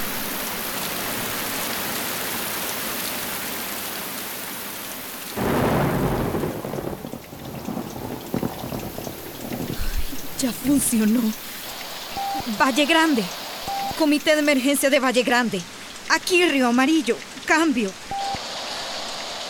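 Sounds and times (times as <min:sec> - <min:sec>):
steady heavy rain during a storm: 0:00.0 - 0:19.4
loud deep roll of thunder: 0:05.4 - 0:14.5
speech: 0:10.4 - 0:11.5, 0:12.5 - 0:13.4, 0:14.0 - 0:18.0.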